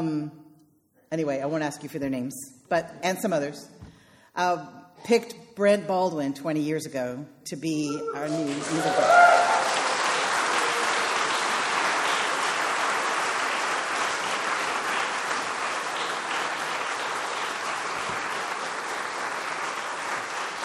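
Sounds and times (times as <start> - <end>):
speech: 1.1 - 3.8, 4.4 - 9.3
large crowd applauding: 8.1 - 20.6.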